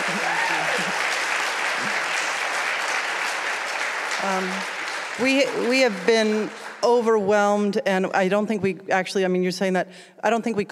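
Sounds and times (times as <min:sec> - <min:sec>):
room full of people applauding: 0:00.0 - 0:07.6
speech: 0:04.2 - 0:10.7.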